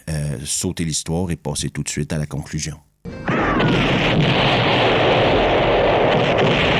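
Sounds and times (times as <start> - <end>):
speech: 0.3 - 2.9, 6.4 - 6.7
dune buggy explosion: 3.3 - 6.7.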